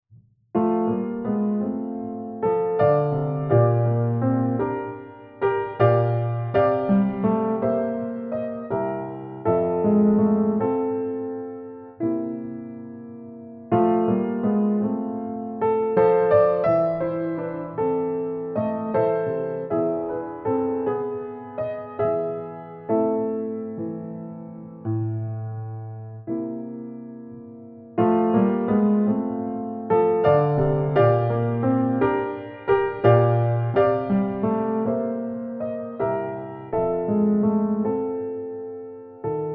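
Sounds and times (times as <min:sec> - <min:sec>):
old black grand piano: 0:00.5 - 0:39.5.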